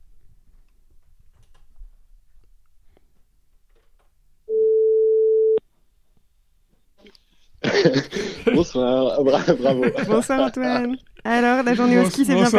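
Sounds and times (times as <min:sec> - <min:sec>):
telephone ringback tone while placing a call: 0:04.5 - 0:05.6
laughter: 0:07.6 - 0:12.5
speech: 0:07.8 - 0:12.5.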